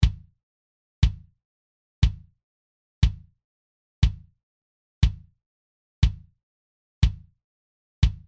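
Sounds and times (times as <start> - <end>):
kick drum: 0.0 - 0.3, 1.0 - 1.3, 2.0 - 2.3, 3.0 - 3.3, 4.0 - 4.3, 5.0 - 5.3, 6.0 - 6.3, 7.0 - 7.3, 8.0 - 8.2.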